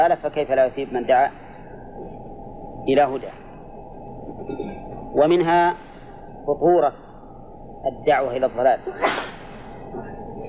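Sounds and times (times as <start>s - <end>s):
speech: 0.0s - 1.4s, 2.8s - 3.4s, 4.3s - 5.8s, 6.4s - 7.0s, 7.8s - 9.3s
person sneezing: 9.0s - 9.5s.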